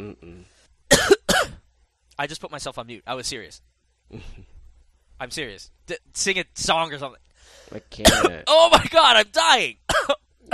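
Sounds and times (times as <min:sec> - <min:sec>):
low voiced grumble: 0:00.0 - 0:00.5
speech: 0:00.0 - 0:00.6, 0:02.2 - 0:04.5, 0:05.2 - 0:10.2
harsh throat-clearing coughs clearing dust from the throat: 0:00.9 - 0:01.6, 0:08.0 - 0:08.9, 0:09.9 - 0:10.5.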